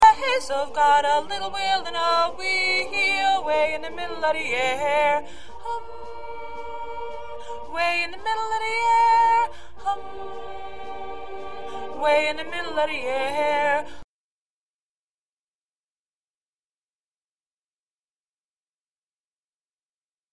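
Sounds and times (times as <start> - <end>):
solo alto: 0.2 - 13.9.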